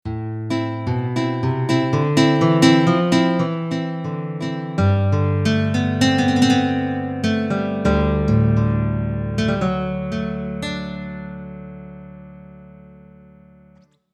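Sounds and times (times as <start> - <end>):
nylon guitar: 0.1 - 14.0.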